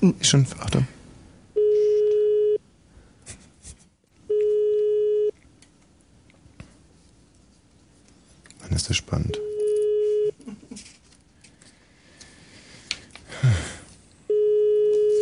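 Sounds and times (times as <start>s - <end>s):
speech: 0.0s - 1.0s
phone line beeping tones during a prank call: 1.6s - 2.6s, 4.3s - 5.3s, 9.4s - 10.4s, 14.3s - 15.2s.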